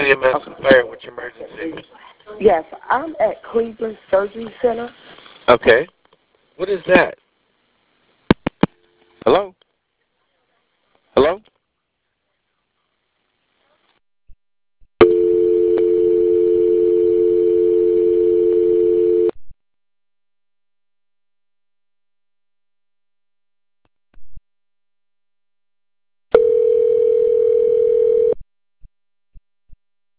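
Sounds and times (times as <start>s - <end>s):
speech: 0.1s - 6.0s, 6.6s - 7.2s, 9.2s - 9.6s, 11.2s - 11.5s
telephone dial tone after a dropped cell phone call: 15.0s - 19.3s, 26.3s - 28.4s.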